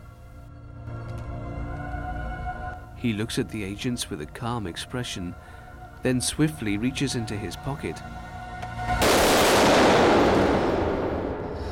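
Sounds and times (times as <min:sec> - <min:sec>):
speech: 0:03.0 - 0:08.3
rapid gunfire from agents: 0:09.0 - 0:10.8.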